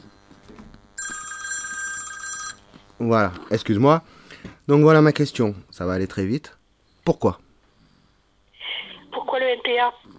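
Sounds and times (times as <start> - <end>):
bright steady electronic telephone ringtone: 1.0 - 2.6
low noise: 1.0 - 10.1
speech: 3.0 - 7.4, 9.7 - 10.1.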